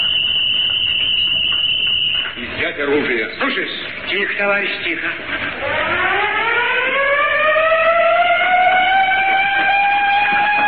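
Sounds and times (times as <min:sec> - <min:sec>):
factory siren wailing as a signal in a factory workshop: 0:00.0 - 0:02.4, 0:05.1 - 0:10.6
speech: 0:02.7 - 0:06.2.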